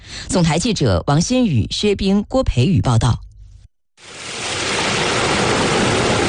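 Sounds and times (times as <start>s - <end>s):
speech: 0.4s - 3.2s
river water rushing through an opened sluice gate: 4.0s - 6.2s.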